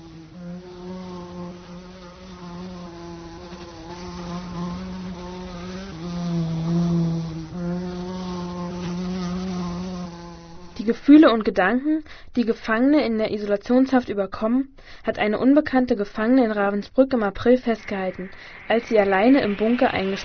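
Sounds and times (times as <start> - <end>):
fly buzzing: 0.0 - 10.9, 17.7 - 20.2
speech: 10.9 - 20.2.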